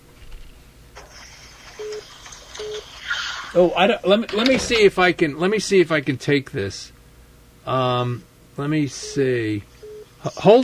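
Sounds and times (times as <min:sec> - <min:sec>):
speech: 0:01.8 - 0:07.0, 0:07.7 - 0:10.6
phone keypad beeps: 0:02.6 - 0:02.8.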